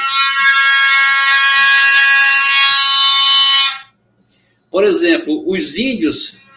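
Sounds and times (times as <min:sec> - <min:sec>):
clay horn fitted with a gourd and balloon blaring a buzzy note: 0:00.0 - 0:03.9
speech: 0:04.8 - 0:06.4.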